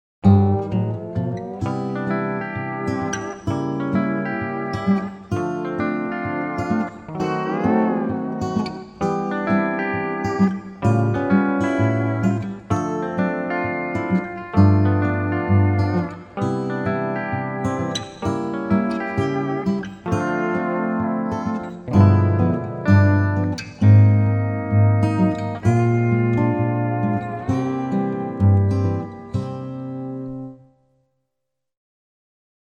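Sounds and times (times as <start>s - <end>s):
pedal steel guitar: 0.2s - 30.8s.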